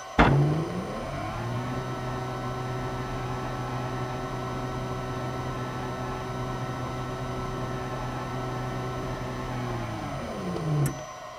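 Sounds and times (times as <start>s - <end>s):
office machine ambience: 0.2s - 11.2s.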